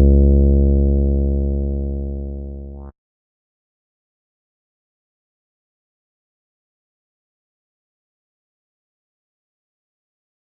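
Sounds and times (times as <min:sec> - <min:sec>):
poly synth bass in F minor: 0:00.0 - 0:02.9.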